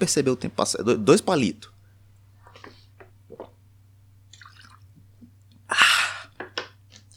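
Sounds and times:
speech: 0.0s - 1.7s
person taking a quick sip of water and swallowing: 2.4s - 7.1s.

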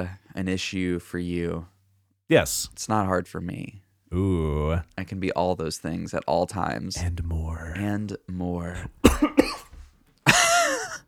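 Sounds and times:
speech: 0.0s - 1.7s, 2.3s - 9.6s
raspy throaty exhale or throat clearing: 4.2s - 5.0s, 8.8s - 11.0s
person coughing: 8.8s - 11.0s.

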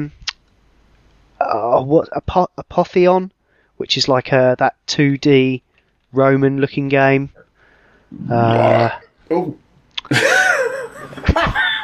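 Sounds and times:
speech: 0.0s - 0.2s, 1.4s - 7.4s, 8.1s - 10.4s
person belching loudly: 8.2s - 9.5s
laughter: 10.1s - 11.8s.

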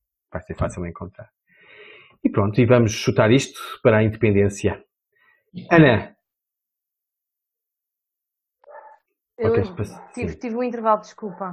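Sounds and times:
speech: 0.3s - 1.4s, 2.3s - 4.9s, 5.5s - 6.2s, 9.4s - 11.5s
dog bark: 8.6s - 9.1s, 9.7s - 10.4s, 11.0s - 11.5s.

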